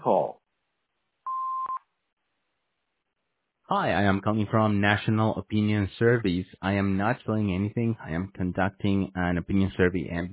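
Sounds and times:
answering machine beep: 1.3s - 1.8s
speech: 3.7s - 10.3s.

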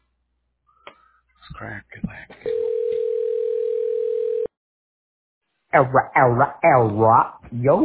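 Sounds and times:
telephone call ringing tone: 2.5s - 4.5s
speech: 5.7s - 7.8s.

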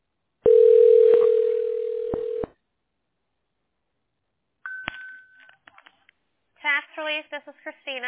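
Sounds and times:
telephone ringing tone while connecting a call: 0.5s - 2.6s
speech: 7.0s - 8.0s.

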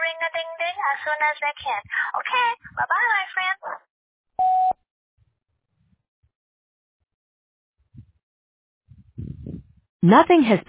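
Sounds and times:
speech: 0.3s - 3.5s, 10.0s - 10.6s
electronic voicemail beep marking the start of message recording: 4.4s - 4.8s.

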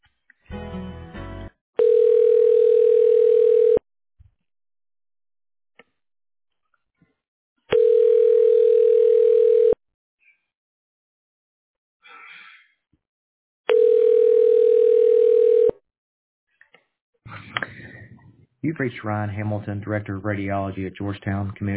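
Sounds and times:
telephone ringback tone through a phone line: 1.8s - 3.8s, 7.8s - 9.8s, 13.7s - 15.8s
speech: 18.8s - 21.7s.

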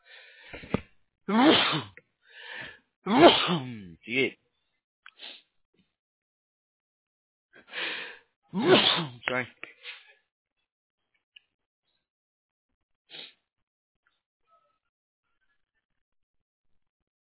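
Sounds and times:
sneeze over a muffled phone-quality line: 1.3s - 2.0s, 3.1s - 3.8s, 8.6s - 10.0s
speech: 1.3s - 2.0s, 3.0s - 4.4s, 8.5s - 9.6s.

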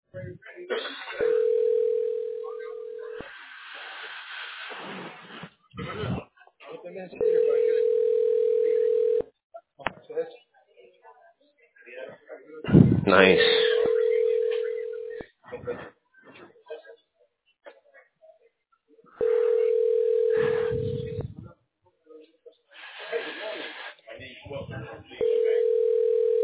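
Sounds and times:
speech: 0.2s - 1.2s, 13.1s - 13.5s
telephone ringback tone during an outgoing call: 1.2s - 3.2s, 7.2s - 9.2s, 13.4s - 15.2s, 19.2s - 21.3s, 25.2s - 26.4s.

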